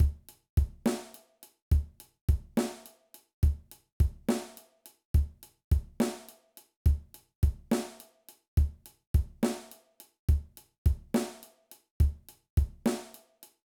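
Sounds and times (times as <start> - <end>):
drum beats: 0.0 - 1.1, 1.7 - 2.8, 5.2 - 6.3, 6.9 - 8.0, 8.6 - 11.4, 12.0 - 13.1.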